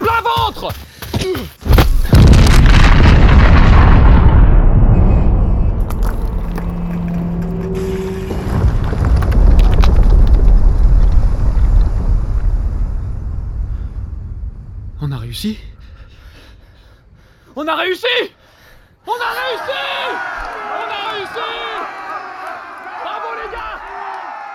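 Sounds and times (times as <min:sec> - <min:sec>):
speech: 0:00.6 - 0:01.0, 0:17.7 - 0:18.4
placed explosive charge detonating with a very loud bang: 0:01.7 - 0:16.3
long roaring rumble of an explosion: 0:02.2 - 0:17.2
wind buffeting: 0:02.5 - 0:17.5.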